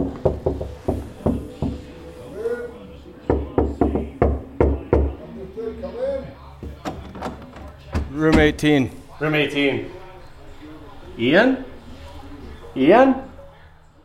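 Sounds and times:
knuckles knocking on a room door: 0:00.0 - 0:01.9, 0:03.3 - 0:05.2
faint murmured voices: 0:00.0 - 0:14.0
speech: 0:08.2 - 0:10.0, 0:11.2 - 0:11.7, 0:12.8 - 0:13.3.

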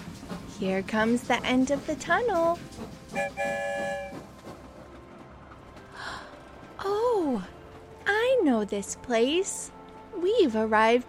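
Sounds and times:
train rumbling along rails past a green field in Ireland: 0:00.0 - 0:11.0
speech: 0:00.6 - 0:04.3, 0:06.8 - 0:11.0
short bright train whistle blast: 0:03.1 - 0:04.3.

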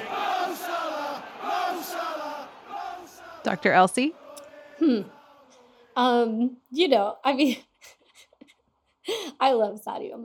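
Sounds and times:
stadium crowd of football fans chanting and cheering: 0:00.0 - 0:06.3
speech: 0:03.4 - 0:04.2, 0:04.8 - 0:05.2, 0:06.0 - 0:08.0, 0:09.0 - 0:10.2.

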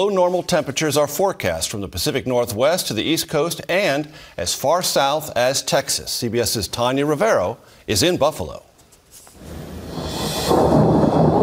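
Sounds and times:
speech: 0:00.0 - 0:08.7
thunder rumbling during a snowstorm: 0:09.4 - 0:11.4.

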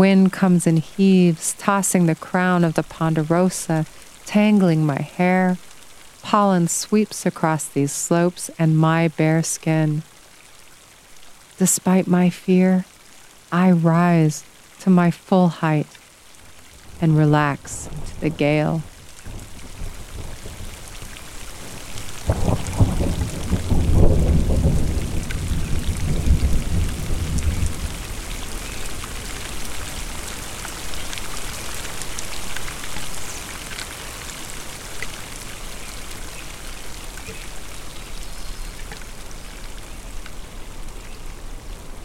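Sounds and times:
speech: 0:00.0 - 0:10.1, 0:11.6 - 0:12.9, 0:13.5 - 0:16.0, 0:17.0 - 0:18.9
heavy rain on ponderosa pine slopes: 0:00.0 - 0:42.0
thunder rumbling on ponderosa pine slopes: 0:17.6 - 0:29.2.

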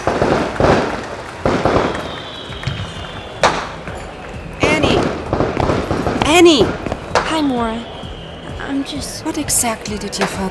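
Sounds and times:
fireworks exploding: 0:00.0 - 0:07.7
thin rising whistle of a rocket: 0:01.6 - 0:09.1
speech: 0:06.4 - 0:06.8, 0:07.6 - 0:07.9, 0:08.8 - 0:10.5.

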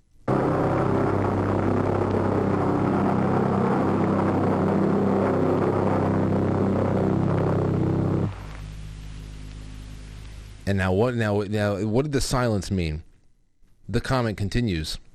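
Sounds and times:
flying bomb pulse-jet engine droning: 0:00.3 - 0:10.7
quieter low rumble: 0:00.3 - 0:10.8
speech: 0:10.7 - 0:13.1, 0:13.9 - 0:15.1.

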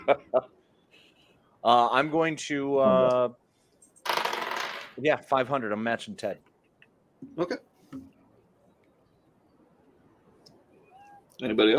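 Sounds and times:
speech: 0:00.1 - 0:00.5, 0:01.6 - 0:03.4, 0:05.0 - 0:06.5, 0:07.3 - 0:08.1, 0:11.4 - 0:11.7
racing dice being shaken and rolled: 0:04.0 - 0:05.0.

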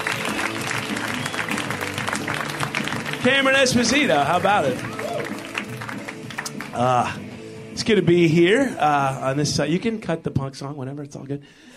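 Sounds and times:
audience applause for a comedian: 0:00.0 - 0:07.2
speech: 0:03.2 - 0:04.9, 0:06.8 - 0:07.2, 0:07.8 - 0:11.7.

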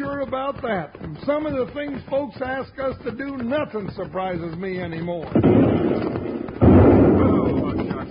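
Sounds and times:
speech: 0:00.3 - 0:06.3
bomb explosion with sustained rumbling roar: 0:05.4 - 0:08.0.

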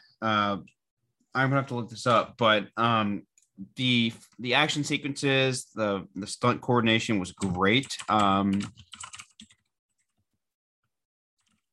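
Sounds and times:
speech: 0:00.2 - 0:09.1
typing on a computer keyboard: 0:07.4 - 0:10.2, 0:11.4 - 0:11.7.

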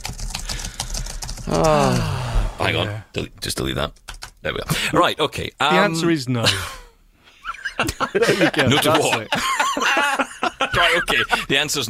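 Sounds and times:
typing on a computer keyboard: 0:00.0 - 0:01.8, 0:03.9 - 0:04.4
speech: 0:01.5 - 0:06.8, 0:07.8 - 0:09.5, 0:10.7 - 0:11.8
laughter: 0:07.4 - 0:11.8.

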